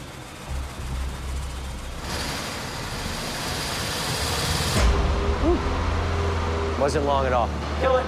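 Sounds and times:
car engine idling and revving to about 2000 RPM: 0:00.0 - 0:08.0
speech: 0:06.8 - 0:08.0.

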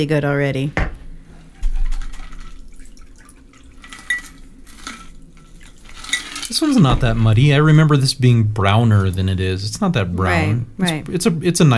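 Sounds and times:
speech: 0:00.0 - 0:00.8, 0:06.6 - 0:11.7
soft trickle of liquid: 0:01.6 - 0:06.9
cocktail poured from a shaker splashing into glasses: 0:01.9 - 0:07.6.

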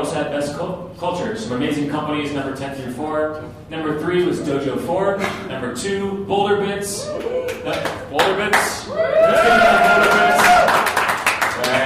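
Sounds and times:
speech: 0:00.1 - 0:10.6
crowd cheering and whooping at a company awards announcement: 0:07.0 - 0:07.8, 0:08.9 - 0:11.0
crowd applause at a company awards announcement: 0:09.2 - 0:11.8.

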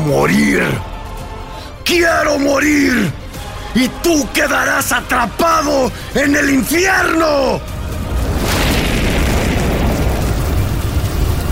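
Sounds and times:
speech: 0:00.1 - 0:01.0, 0:01.9 - 0:07.7
wall of fire erupting with a loud roar: 0:07.6 - 0:11.5.

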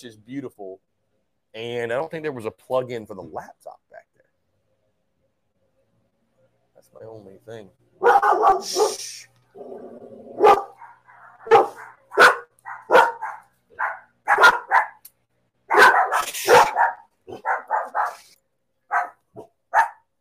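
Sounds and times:
speech: 0:00.0 - 0:00.8, 0:01.5 - 0:04.1, 0:06.8 - 0:10.7
several dogs barking excitedly at a person in the yard: 0:08.0 - 0:09.0, 0:10.3 - 0:15.0, 0:15.6 - 0:20.1
sharp dog yips: 0:10.4 - 0:15.0, 0:15.7 - 0:18.3, 0:18.9 - 0:20.0.

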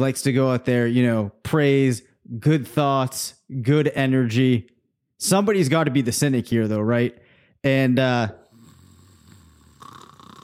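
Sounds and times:
speech: 0:00.0 - 0:08.4
deep-sleep snore with rattling snort: 0:08.4 - 0:10.4.

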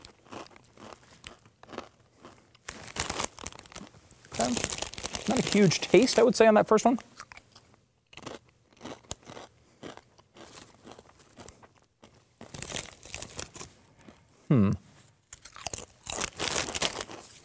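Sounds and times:
crunching and chewing of Blazin' Buffalo Ranch Doritos tortilla chips: 0:00.0 - 0:06.3, 0:07.2 - 0:13.8, 0:15.3 - 0:17.4
bursts of crinkling: 0:02.6 - 0:06.4, 0:12.4 - 0:13.8, 0:15.4 - 0:17.4
speech: 0:04.5 - 0:07.2
brief vocal sound: 0:14.5 - 0:14.8.

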